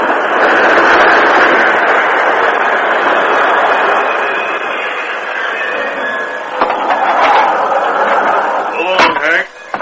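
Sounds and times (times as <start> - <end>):
express train rumbling and hissing as it slows: 0.0 - 9.8
metallic clanks of a train coming to a halt: 6.6 - 7.6.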